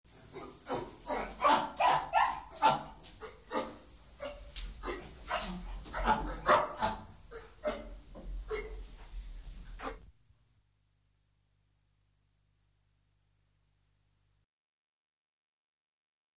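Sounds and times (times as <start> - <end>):
monkey giving harsh barking chatter: 0.3 - 7.9.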